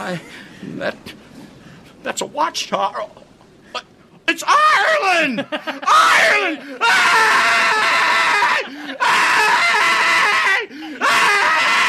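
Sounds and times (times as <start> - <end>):
speech: 0.1 - 1.2, 2.0 - 7.8
person screaming excitedly: 4.3 - 11.8.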